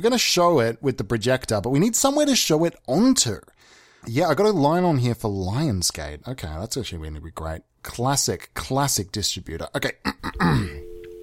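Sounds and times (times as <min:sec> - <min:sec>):
speech: 0:00.0 - 0:10.9
throat-clearing grunt: 0:10.0 - 0:10.8
telephone ringing tone on a call: 0:10.6 - 0:11.2.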